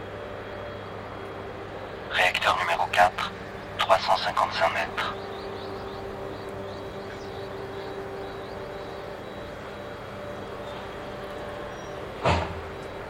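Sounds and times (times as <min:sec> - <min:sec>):
speech: 0:02.2 - 0:05.4
sharp clunk as the truck stops: 0:12.2 - 0:13.0.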